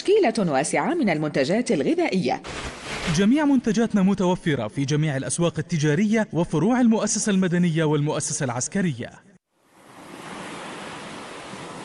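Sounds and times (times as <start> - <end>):
speech: 0.2 - 9.3
ocean waves: 2.4 - 3.2, 9.6 - 11.8.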